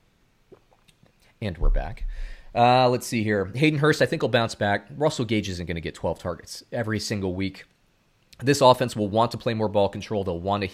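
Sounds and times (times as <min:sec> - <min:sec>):
person sipping water: 0:00.5 - 0:01.3
speech: 0:01.4 - 0:07.7, 0:08.4 - 0:10.7.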